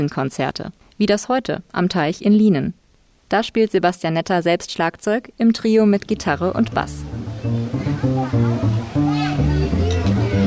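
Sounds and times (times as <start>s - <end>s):
speech: 0.0s - 8.5s
children calling and shrieking outdoors by a pond: 7.1s - 10.4s.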